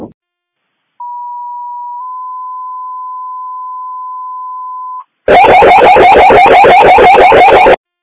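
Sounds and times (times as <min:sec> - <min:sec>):
fire department radio warbling alert tone: 0:05.3 - 0:07.8.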